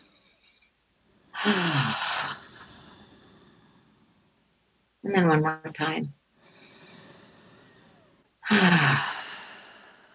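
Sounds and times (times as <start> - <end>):
person taking a long drawn-in breath during a deep-breathing relaxation exercise: 1.3 - 4.1, 6.4 - 10.1
speech: 1.4 - 1.8, 5.1 - 6.2, 8.5 - 9.1
person yawning with a falling voiced groan during a deep-breathing relaxation exercise: 1.4 - 2.4.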